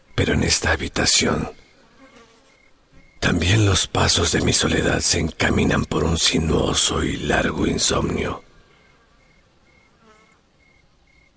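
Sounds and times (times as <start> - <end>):
speech: 0.2 - 1.6, 3.3 - 8.5
housefly buzzing in flight: 1.8 - 2.7, 9.9 - 10.4.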